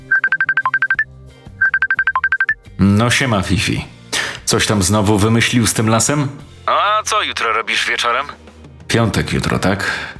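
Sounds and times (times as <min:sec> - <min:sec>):
phone ringtone of rapid electronic beeps for an incoming call: 0:00.0 - 0:02.6
speech: 0:02.8 - 0:03.9, 0:04.5 - 0:10.1.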